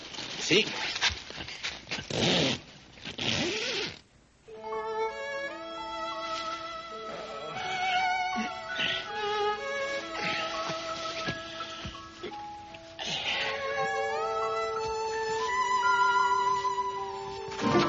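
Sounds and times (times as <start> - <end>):
speech: 0.5 - 1.1
tent zipper being zipped closed: 1.9 - 4.0
sustained musical tones: 4.5 - 17.8.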